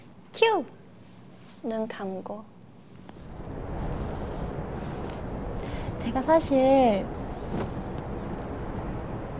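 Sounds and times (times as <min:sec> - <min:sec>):
speech: 0:00.4 - 0:00.8, 0:01.6 - 0:02.6, 0:06.0 - 0:07.8
steady rushing wind noise: 0:03.2 - 0:09.3.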